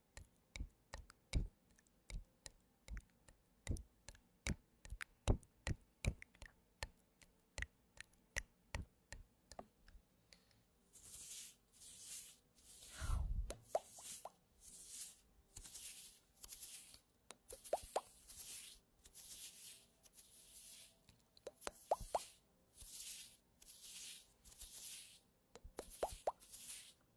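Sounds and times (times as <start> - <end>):
sharp little taps and plops: 3.7 - 9.7, 13.5 - 14.4, 17.3 - 18.2, 21.4 - 22.4, 25.6 - 26.4
stocking-material gloves rubbing with soft bright swishing strokes: 11.0 - 27.0.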